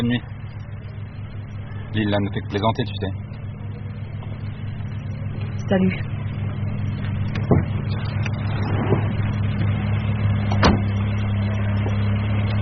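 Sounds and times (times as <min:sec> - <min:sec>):
speech: 0:00.0 - 0:00.4, 0:01.9 - 0:03.2, 0:05.7 - 0:06.1
car engine rumbling as car restarts and pulls away: 0:00.0 - 0:12.6
sharp clicks and knocks: 0:07.0 - 0:09.7, 0:10.5 - 0:11.0.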